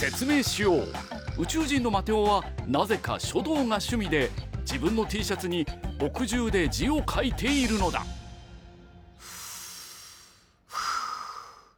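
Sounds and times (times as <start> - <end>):
speech: 0.0 - 8.2
person taking a deep breath: 9.1 - 11.7.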